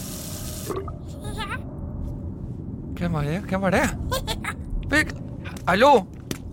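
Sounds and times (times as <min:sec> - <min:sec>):
water tap running in a house: 0:00.0 - 0:00.8
speech: 0:00.7 - 0:01.4, 0:03.0 - 0:06.2.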